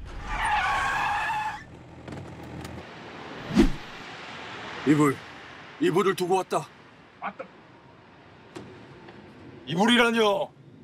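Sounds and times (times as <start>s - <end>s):
truck tires squealing while braking hard: 0.1s - 1.8s
speech: 4.9s - 7.6s, 9.7s - 10.6s.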